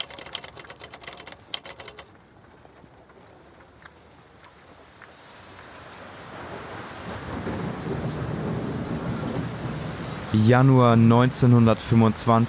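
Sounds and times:
rapid sharp clicks: 0.0 - 2.5
heavy rain on grey cobblestones: 0.4 - 12.4
speech: 10.3 - 12.4.

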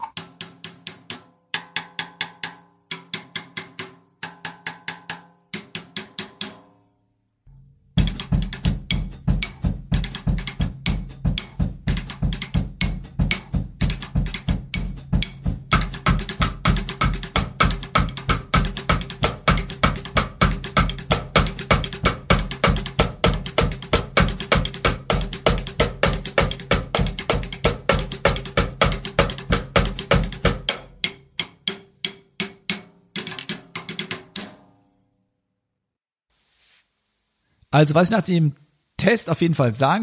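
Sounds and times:
snare drum rim clicks: 0.0 - 6.6, 8.0 - 34.6
speech: 37.8 - 40.0.

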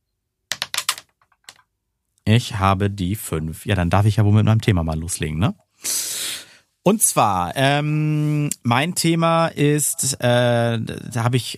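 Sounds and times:
dice rattling and clattering onto a hard surface: 0.5 - 1.6
speech: 2.3 - 6.0, 6.8 - 11.5.

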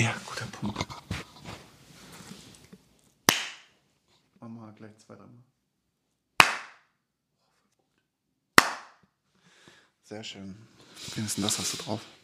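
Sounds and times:
speech: 0.0 - 0.8, 4.8 - 5.6, 10.1 - 12.2
single hand claps: 3.3 - 3.7, 6.4 - 6.9, 8.6 - 9.0.

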